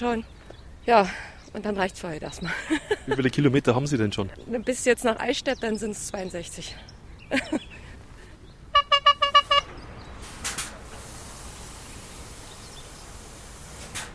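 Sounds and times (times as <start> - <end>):
speech: 0.0 - 7.7
traffic hum on the A9 motorway: 0.0 - 14.1
laughter: 2.5 - 3.4, 7.3 - 7.8
short bright horn toots at a motorway truck stop: 8.7 - 9.8
passing vehicles whooshing: 8.8 - 14.1.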